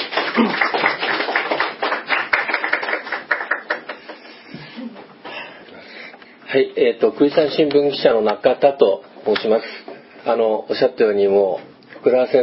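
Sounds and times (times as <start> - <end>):
audience applauding warmly to welcome a nervous speaker: 0.0 - 4.4
speech: 0.4 - 0.7, 6.5 - 12.4.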